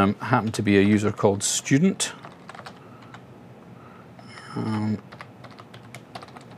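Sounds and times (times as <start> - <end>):
speech: 0.0 - 2.3, 4.5 - 5.1
computer keyboard typing login credentials: 2.2 - 3.3, 4.2 - 6.5.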